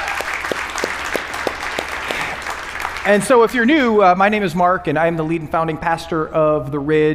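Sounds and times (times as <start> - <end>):
church audience applauding loudly: 0.0 - 3.6
speech: 3.1 - 7.1.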